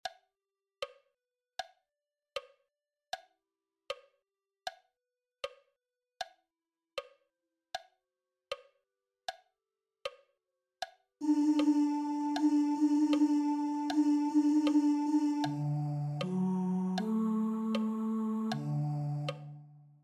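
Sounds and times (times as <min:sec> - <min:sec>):
tenors singing: 0:11.2 - 0:19.7.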